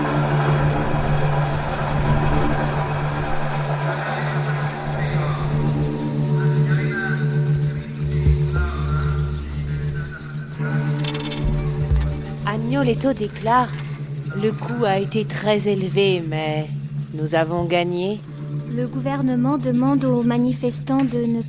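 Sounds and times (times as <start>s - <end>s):
helicopters circling over the city in the evening: 0.0s - 21.4s
speech: 12.8s - 13.8s, 14.4s - 21.4s.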